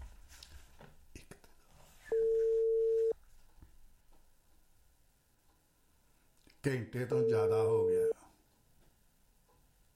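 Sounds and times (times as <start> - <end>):
telephone line tone while phoning someone directly: 2.1 - 3.2
speech: 6.6 - 8.2.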